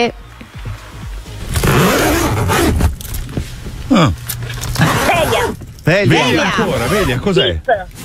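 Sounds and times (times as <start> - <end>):
speech: 0.0 - 0.3, 3.9 - 4.2, 5.4 - 8.0
zipper being closed with rasping pulls: 1.5 - 3.3, 4.4 - 5.6, 6.3 - 7.3.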